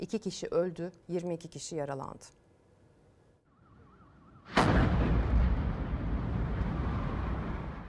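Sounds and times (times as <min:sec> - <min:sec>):
speech: 0:00.0 - 0:02.4
gas tanker explosion at a gas filling plant in Nairobi Kenya: 0:04.4 - 0:07.8
long loud rumbling roar after a gas tanker explosion: 0:04.6 - 0:07.8.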